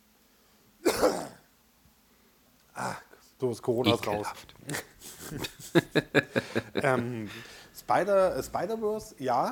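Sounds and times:
harsh cough: 0.8s - 1.5s
speech: 3.4s - 9.5s
laughter: 3.9s - 7.5s.

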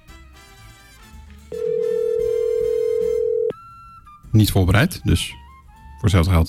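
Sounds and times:
mid-pitched ringback tone of an outgoing telephone call: 1.6s - 3.5s
speech: 4.4s - 5.4s, 6.0s - 6.4s.

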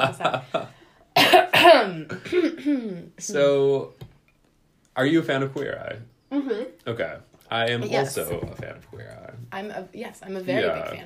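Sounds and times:
speech: 0.0s - 0.7s, 2.0s - 4.0s, 5.0s - 11.0s
person coughing harshly: 1.2s - 3.0s.

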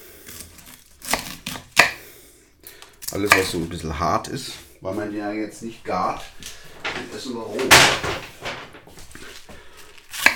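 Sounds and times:
knife chopping cored white cabbage on a board: 0.3s - 2.1s, 3.3s - 3.6s, 10.1s - 10.3s
speech: 3.1s - 8.3s.

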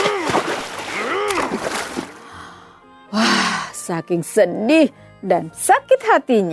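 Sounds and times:
boat pushing through swamp water choked with water hyacinth: 0.0s - 2.3s
speech: 3.9s - 6.5s.

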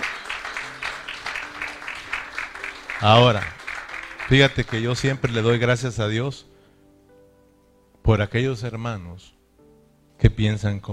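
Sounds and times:
congregation applauding in rhythmic claps: 0.0s - 5.6s
speech: 3.0s - 3.6s, 4.3s - 6.5s, 8.0s - 9.4s, 10.2s - 10.9s.

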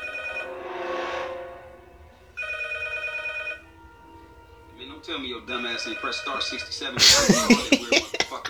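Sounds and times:
telephone ringing with electronic multi-tone rings: 0.0s - 0.6s, 2.4s - 3.8s, 5.5s - 6.8s
speech: 5.0s - 8.4s
laughter: 7.0s - 8.4s.

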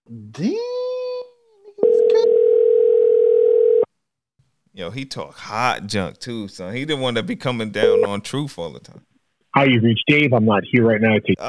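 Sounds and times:
speech: 0.1s - 0.7s, 4.8s - 11.4s
telephone ringing unanswered: 1.8s - 3.9s, 7.6s - 8.3s.

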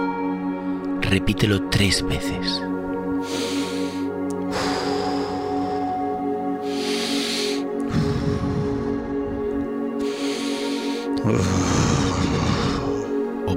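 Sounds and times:
speech: 1.1s - 3.6s, 11.3s - 11.8s
steady humming musical drone: 1.6s - 13.5s
deep breaths in through the nose and out through the mouth: 3.1s - 13.4s.

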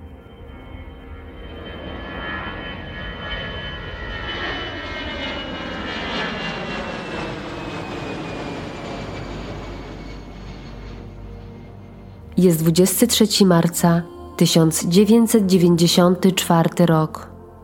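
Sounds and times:
jet airplane engines roaring through takeoff: 0.0s - 12.7s
speech: 12.4s - 17.3s.

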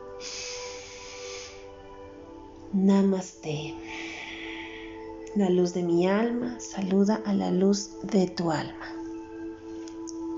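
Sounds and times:
quiet sustained tonal background: 0.0s - 10.3s
deep inhale through the nose during guided yoga and meditation: 0.1s - 1.9s, 3.8s - 5.1s
speech: 2.7s - 4.0s, 5.4s - 9.0s.

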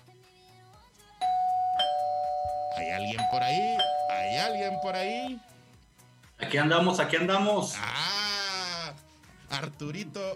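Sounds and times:
doorbell chiming: 1.2s - 5.4s
speech: 2.8s - 5.5s, 6.4s - 8.2s, 9.6s - 10.3s.

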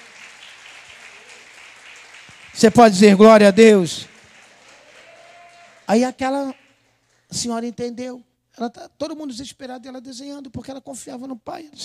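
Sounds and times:
crowd applause: 0.0s - 7.2s
speech: 2.6s - 4.1s, 5.9s - 6.6s, 7.3s - 11.8s.

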